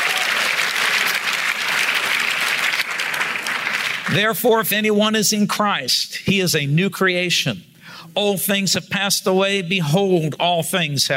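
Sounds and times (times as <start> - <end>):
audience clapping: 0.0 - 4.2
speech: 4.1 - 11.1.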